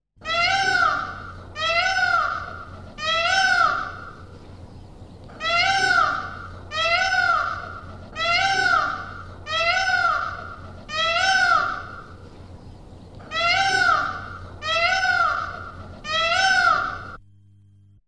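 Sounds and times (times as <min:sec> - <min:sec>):
peacock calling: 0:00.2 - 0:17.2.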